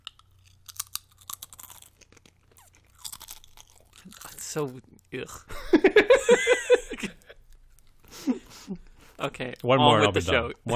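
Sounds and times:
potato chips being chewed: 0.0 - 4.8
speech: 4.5 - 7.2, 9.2 - 10.7
laughter: 5.5 - 7.4.

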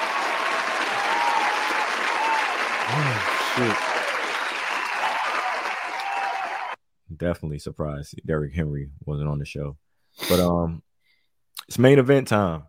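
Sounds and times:
sizable crowd applauding: 0.0 - 6.8
man exclaiming: 2.9 - 3.9
speech: 2.9 - 4.0, 7.2 - 10.9, 11.7 - 12.6.

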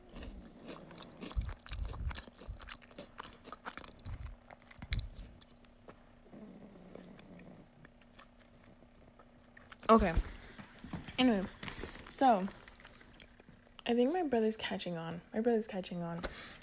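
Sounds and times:
chewing crunchy Cheez-It cheese crackers: 0.0 - 6.2, 6.9 - 9.9, 11.6 - 13.9
faint steady hum: 0.0 - 16.6
speech: 9.9 - 10.3, 11.2 - 11.6, 12.2 - 12.6, 13.9 - 16.6.

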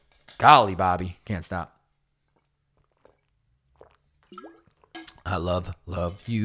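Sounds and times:
speech: 0.4 - 1.8, 5.3 - 6.4
person sipping water with slurps and gulps: 2.2 - 6.0.

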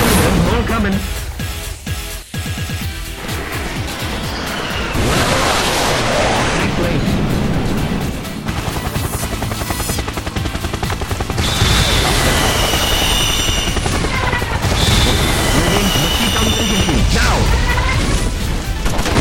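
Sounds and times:
voices speaking: 0.0 - 1.3, 6.1 - 7.4, 13.8 - 18.7
video game helicopter rotor drone: 2.9 - 19.1
video game explosive roar: 3.2 - 8.2, 11.4 - 19.1
video game rapid gunfire bursts: 8.2 - 19.1.

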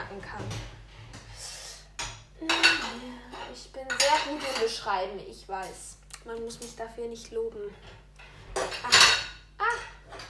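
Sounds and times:
plate pushed into a packed dishwasher, crockery clinking: 2.0 - 4.9, 8.5 - 10.2
speech: 3.6 - 8.0.

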